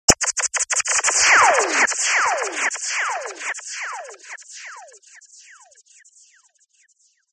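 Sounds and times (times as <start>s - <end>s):
laser shots: 0.1s - 5.2s.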